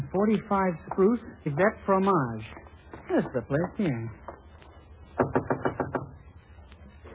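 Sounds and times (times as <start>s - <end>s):
speech: 0.1s - 4.2s
firm knocks on a wooden door: 5.2s - 6.2s.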